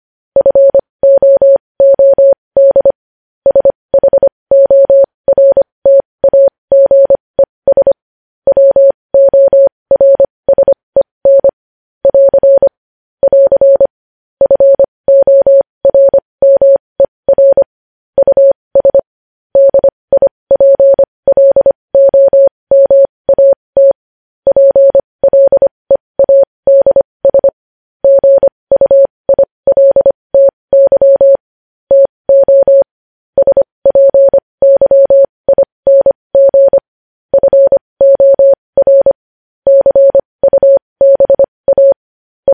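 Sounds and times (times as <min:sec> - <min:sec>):
morse code tone: 0:00.4 - 0:07.9, 0:08.5 - 0:19.0, 0:19.6 - 0:42.5.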